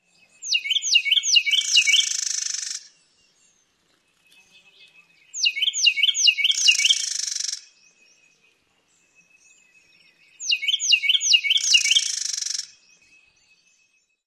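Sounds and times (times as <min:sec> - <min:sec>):
male Carolina wren song: 0:00.0 - 0:14.2.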